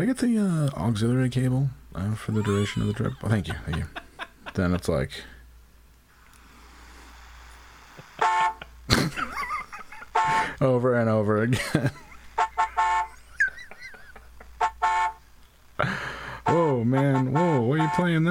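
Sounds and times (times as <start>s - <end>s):
speech: 0.0s - 5.3s, 10.6s - 12.0s, 16.8s - 18.3s
laughter: 2.2s - 4.8s, 8.2s - 10.6s, 11.5s - 14.6s
loud car horn honking: 8.2s - 8.7s, 10.1s - 10.6s, 12.4s - 13.2s, 14.6s - 15.2s, 16.4s - 18.3s.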